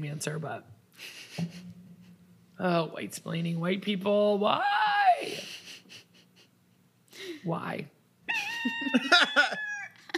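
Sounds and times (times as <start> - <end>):
speech: 0.0 - 1.7, 2.6 - 5.6, 7.2 - 8.0, 8.6 - 9.7
rooster crowing: 8.3 - 10.0.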